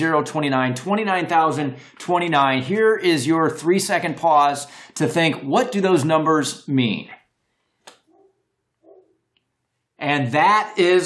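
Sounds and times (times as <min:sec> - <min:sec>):
speech: 0:00.0 - 0:07.2, 0:10.0 - 0:11.0
dog barking faintly in the background: 0:08.1 - 0:09.2.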